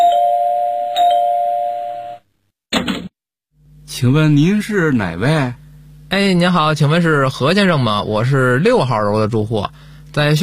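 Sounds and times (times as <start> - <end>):
home doorbell electronic chime: 0.0 - 2.2
speech: 4.0 - 10.4.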